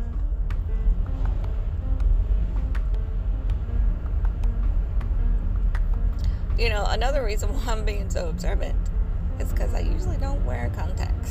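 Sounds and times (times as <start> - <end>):
car rolling along a road with tire noise: 0.0 - 11.3
speech: 6.6 - 11.3.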